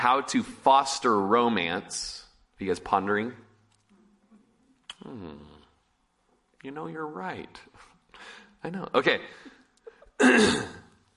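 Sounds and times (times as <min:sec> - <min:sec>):
speech: 0:00.0 - 0:03.5, 0:05.0 - 0:05.6, 0:06.6 - 0:09.5, 0:10.2 - 0:10.8
faint short vocal sound: 0:04.9 - 0:05.8
dry cough: 0:10.2 - 0:10.9.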